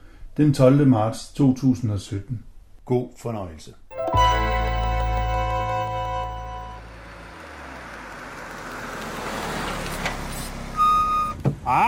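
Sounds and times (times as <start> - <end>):
speech: 0.4 - 3.8
moving car engine hum: 4.2 - 11.8
road rumble inside moving car: 4.2 - 11.8.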